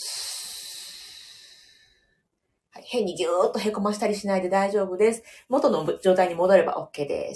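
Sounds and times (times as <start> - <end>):
slow exhale of breath during breathing exercise: 0.0 - 2.1
speech: 2.8 - 7.3.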